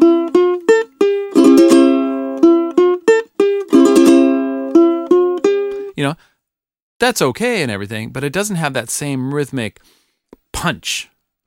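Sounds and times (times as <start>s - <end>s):
acoustic guitar triple strum played open without muting: 0.0s - 5.9s
speech: 7.0s - 11.1s.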